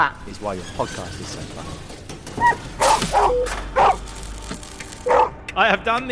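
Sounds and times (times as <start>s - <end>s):
speech: 0.0s - 4.0s, 5.6s - 6.0s
small dog yapping: 2.4s - 4.0s, 5.1s - 5.3s.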